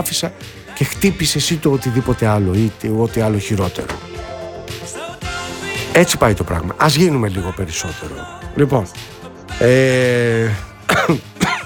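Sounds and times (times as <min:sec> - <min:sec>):
speech: 0:00.0 - 0:04.1, 0:06.0 - 0:11.3
drawn-out voiced throat sound: 0:09.6 - 0:11.6
person coughing in sharp harsh bursts: 0:10.9 - 0:11.6.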